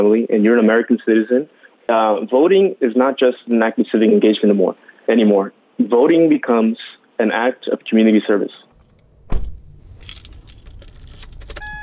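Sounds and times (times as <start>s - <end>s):
speech: 0.0s - 8.7s
light rustling inside a vehicle: 8.8s - 11.6s
car door shutting: 8.8s - 11.8s
keys jangling inside a vehicle: 10.0s - 11.7s.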